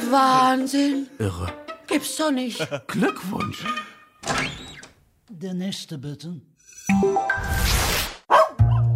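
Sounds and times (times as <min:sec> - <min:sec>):
speech: 0:00.1 - 0:04.5, 0:05.3 - 0:07.8
dog barking: 0:08.3 - 0:08.8.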